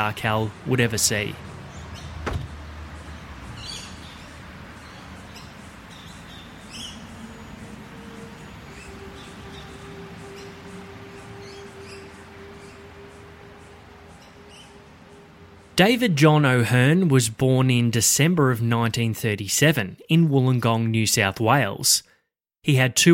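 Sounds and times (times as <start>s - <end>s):
speech: 0.0s - 1.5s, 15.8s - 23.1s
small birds chirping quietly: 0.2s - 16.9s
glass sliding door rumbling open: 2.2s - 2.6s.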